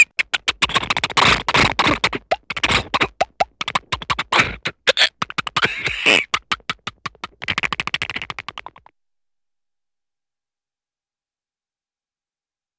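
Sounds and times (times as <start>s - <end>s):
funny cartoon vocal imitation of airplane and helicopter: 0.1s - 8.9s.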